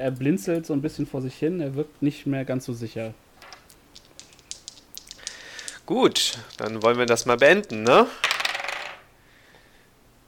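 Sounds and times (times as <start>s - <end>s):
speech: 0.0s - 3.2s, 5.9s - 8.3s
dice tumbling across a hard tabletop: 3.4s - 9.1s.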